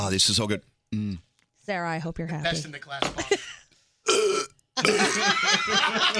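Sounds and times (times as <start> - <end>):
speech: 0.0 - 3.6, 4.8 - 6.1
person burping after drinking Coca-Cola: 0.9 - 1.2, 4.1 - 5.2
laughter: 4.8 - 6.1.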